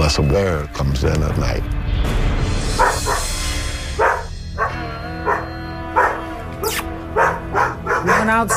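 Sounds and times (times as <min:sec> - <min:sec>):
speech: 0:00.1 - 0:02.2, 0:08.2 - 0:08.5
dog barking: 0:02.8 - 0:03.3, 0:04.0 - 0:08.5.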